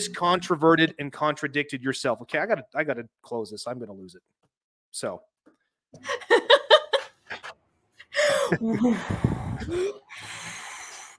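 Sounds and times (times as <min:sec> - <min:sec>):
speech: 0:00.0 - 0:05.3, 0:05.9 - 0:06.4, 0:08.5 - 0:10.4
quick choppy laugh-like breaths: 0:07.2 - 0:10.9
deep breathing in and out: 0:08.1 - 0:11.1.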